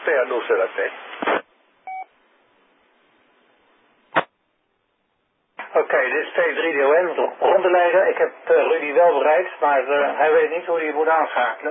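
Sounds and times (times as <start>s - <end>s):
brief bursts of static: 0.0s - 1.5s
speech: 0.1s - 1.4s, 6.0s - 11.6s
single short DTMF telephone tone: 1.9s - 2.1s.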